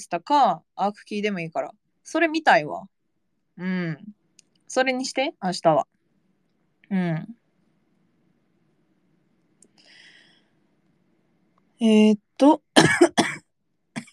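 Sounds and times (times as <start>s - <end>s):
speech: 0.0s - 3.0s, 3.6s - 5.9s, 6.9s - 7.4s, 11.8s - 13.3s
faint breathy sound: 9.6s - 10.8s
person coughing into a microphone: 12.8s - 14.1s.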